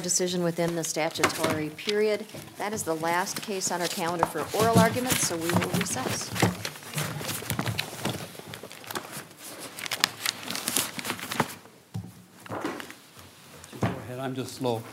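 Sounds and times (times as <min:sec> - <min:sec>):
speech: 0:00.0 - 0:06.7, 0:14.3 - 0:14.9
papers gathered and shuffled at a court hearing: 0:00.0 - 0:11.7
soft thumps of papers: 0:00.7 - 0:09.1.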